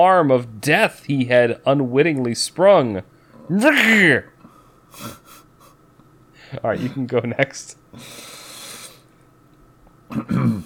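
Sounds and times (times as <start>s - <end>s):
speech: 0.0s - 4.3s, 4.9s - 5.2s, 6.5s - 8.4s, 10.1s - 10.6s
person clearing throat: 10.1s - 10.6s.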